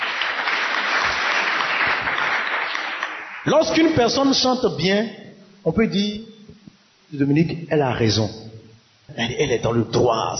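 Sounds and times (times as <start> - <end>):
applause: 0.0 - 3.9
speech: 3.4 - 6.3, 7.1 - 8.5, 9.1 - 10.3.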